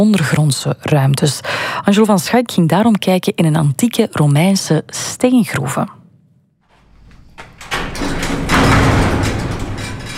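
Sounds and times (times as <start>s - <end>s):
speech: 0.0s - 6.0s
large metal gate grinding and scraping open with metallic clanks: 6.8s - 10.1s.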